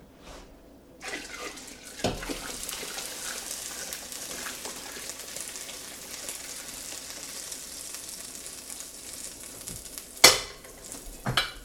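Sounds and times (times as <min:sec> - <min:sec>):
large brewing pot clanking: 0:01.0 - 0:05.1, 0:10.2 - 0:11.6
water pouring into a large brewing pot: 0:01.0 - 0:11.6.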